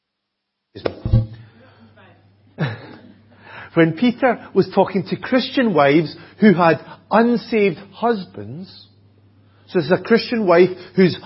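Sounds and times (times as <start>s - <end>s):
speech: 0.7s - 1.0s, 3.7s - 8.9s, 9.7s - 11.2s
person coughing: 2.6s - 3.2s.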